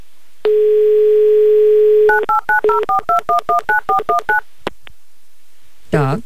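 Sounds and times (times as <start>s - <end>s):
telephone dial tone: 0.5s - 4.4s
short telephone keypad beeps: 2.1s - 4.4s.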